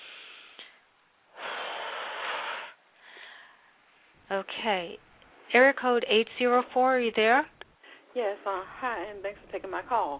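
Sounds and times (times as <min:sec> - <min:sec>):
woman taking a big deep breath: 0:00.0 - 0:03.8
speech: 0:04.3 - 0:07.5, 0:08.2 - 0:10.1.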